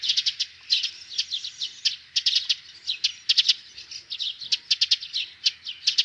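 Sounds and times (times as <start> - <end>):
Eurasian tree sparrow giving harsh tek calls near a nest with young: 0.0 - 6.0.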